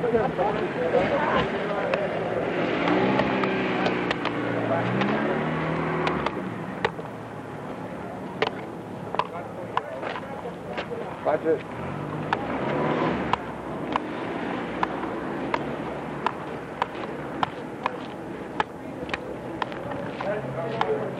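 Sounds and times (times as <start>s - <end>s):
vehicle engine passing: 0.0s - 8.7s, 10.7s - 21.1s
indistinct voices: 0.0s - 21.1s
steady street traffic rumbling: 0.0s - 21.1s
speech: 0.1s - 1.7s, 11.3s - 11.9s.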